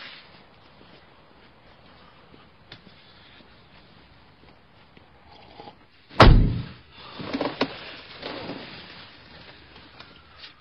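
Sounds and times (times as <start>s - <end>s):
door slamming shut: 6.2s - 6.8s.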